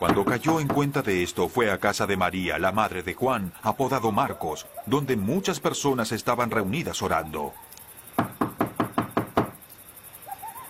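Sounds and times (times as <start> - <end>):
knocking on a street door: 0.0 - 0.9, 8.2 - 9.6
speech: 0.0 - 7.7
faint high chirping: 3.4 - 10.6.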